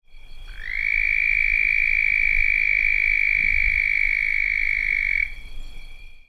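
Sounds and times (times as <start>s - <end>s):
Red-spotted toad giving a long steady high musical trill: 0.4s - 5.4s.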